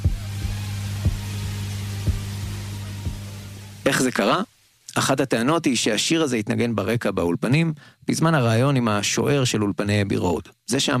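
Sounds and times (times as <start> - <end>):
slow recorded heartbeat at the end of an album: 0.0 - 3.3
constant low droning hum: 0.0 - 4.0
speech: 3.9 - 10.9.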